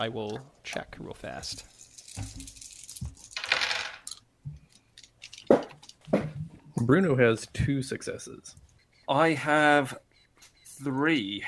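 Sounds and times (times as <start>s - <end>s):
speech: 0.0s - 2.6s, 6.8s - 10.1s, 10.8s - 11.4s
dice rolling across a hard tabletop: 1.9s - 4.2s.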